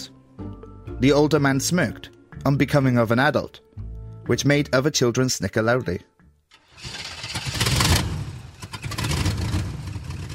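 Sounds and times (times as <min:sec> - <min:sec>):
speech: 0:01.0 - 0:03.6, 0:04.3 - 0:06.1
truck engine turning over and catching: 0:06.5 - 0:10.3.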